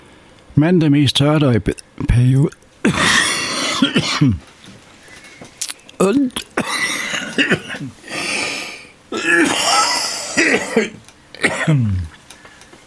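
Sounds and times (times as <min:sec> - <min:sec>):
speech: 0:00.6 - 0:03.3, 0:03.9 - 0:04.6, 0:06.0 - 0:06.5, 0:07.4 - 0:08.1, 0:10.4 - 0:12.2
person coughing: 0:02.8 - 0:04.4, 0:06.0 - 0:12.1
throat clearing: 0:02.9 - 0:04.4, 0:06.0 - 0:08.4, 0:09.1 - 0:12.2.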